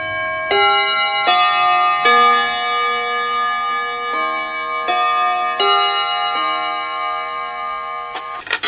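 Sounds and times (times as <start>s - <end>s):
carillon chiming noon: 0.0s - 8.6s.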